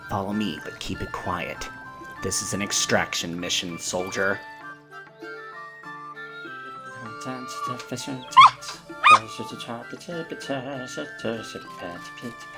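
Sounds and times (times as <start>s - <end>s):
speech: 0.1s - 4.5s, 7.2s - 12.5s
puppy yipping: 7.6s - 9.4s.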